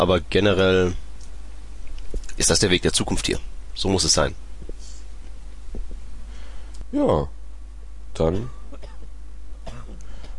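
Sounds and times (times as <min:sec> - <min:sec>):
speech: 0:00.0 - 0:01.0, 0:02.4 - 0:04.4, 0:06.9 - 0:07.4, 0:08.2 - 0:08.6
person coughing: 0:08.6 - 0:10.3
throaty voiced rasping like throat clearing: 0:08.7 - 0:10.3.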